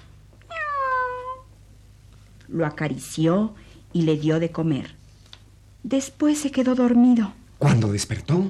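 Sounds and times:
faint low hum: 0.0s - 8.4s
cat meowing: 0.5s - 1.5s
speech: 2.5s - 5.0s, 5.8s - 8.4s.

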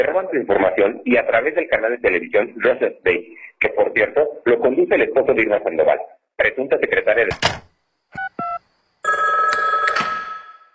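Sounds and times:
speech: 0.0s - 7.6s
telephone ringing: 8.2s - 10.7s.

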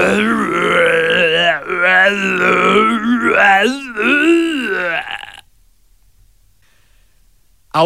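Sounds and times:
person imitating a tiger growl: 0.0s - 5.4s.

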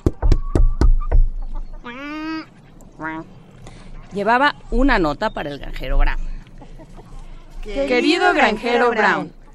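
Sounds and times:
knocking on a door: 0.0s - 1.4s
speech: 4.1s - 6.3s, 7.6s - 9.4s.

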